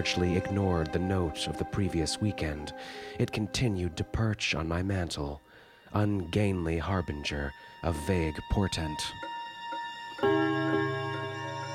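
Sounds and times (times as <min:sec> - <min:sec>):
speech: 0:00.0 - 0:09.3
bright bell-like strike of railroad clock: 0:10.2 - 0:11.7.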